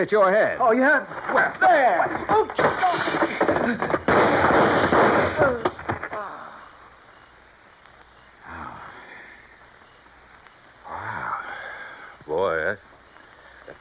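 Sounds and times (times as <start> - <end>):
speech: 0.0 - 4.0
thrown rock smashing through a car windshield as the car turns: 1.1 - 6.2
shattering windshield glass: 1.2 - 6.0.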